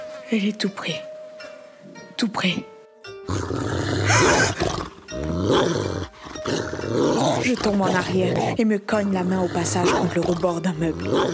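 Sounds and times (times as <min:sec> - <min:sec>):
speech: 0:00.3 - 0:01.1, 0:02.2 - 0:02.7, 0:07.2 - 0:11.3
deep menacing animal growls and roars: 0:03.3 - 0:08.6, 0:09.2 - 0:11.3.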